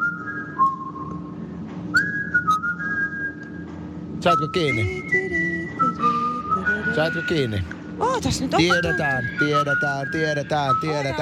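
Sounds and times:
person whistling a slow sustained melody in a reverberant space: 0.0s - 1.2s, 1.9s - 3.6s, 4.3s - 7.2s
low hum: 0.0s - 11.2s
speech: 4.2s - 5.4s, 7.0s - 11.2s.

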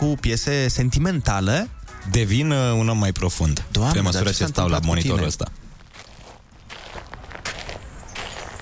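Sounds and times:
speech: 0.0s - 5.7s
footsteps scuffing: 5.8s - 8.6s.

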